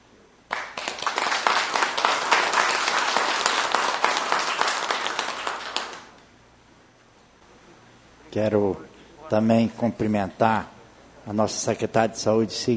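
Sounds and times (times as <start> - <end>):
audience applauding for a doctor: 0.5 - 6.1
speech: 8.4 - 12.7.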